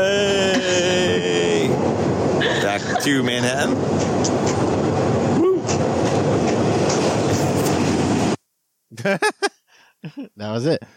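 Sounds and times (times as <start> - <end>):
laughter: 0.0 - 1.7, 2.4 - 3.2, 9.0 - 10.3
New York subway train clattering on rails from Queens to Manhattan: 0.0 - 8.4
speech: 3.0 - 4.8, 9.0 - 9.3, 10.6 - 10.9.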